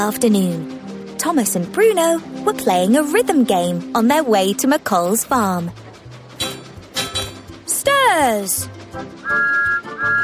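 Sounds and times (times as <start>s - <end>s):
speech: 0.0s - 5.8s, 8.1s - 9.6s
shrill whistle blasts: 9.2s - 10.2s.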